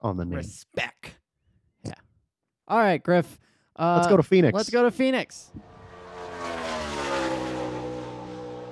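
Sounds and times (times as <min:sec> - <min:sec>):
speech: 0:00.0 - 0:01.0, 0:02.7 - 0:05.6
car driving past: 0:05.6 - 0:08.6.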